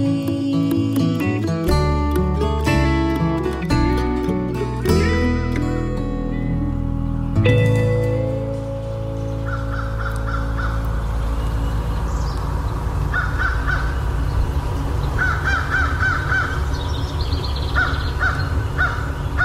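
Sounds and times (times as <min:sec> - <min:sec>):
constant low rumbling noise: 0:00.0 - 0:19.4
crow cawing: 0:09.5 - 0:10.8, 0:13.1 - 0:13.9, 0:15.2 - 0:16.6.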